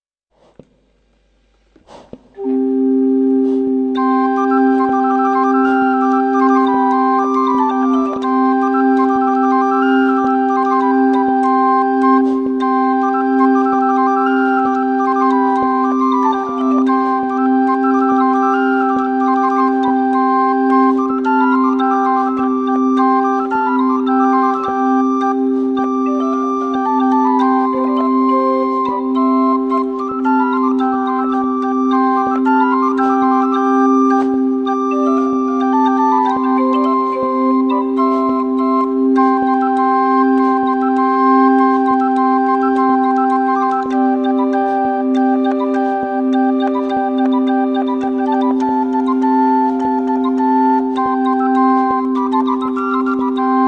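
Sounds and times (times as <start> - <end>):
intrada played on a portative organ: 1.6 - 53.6.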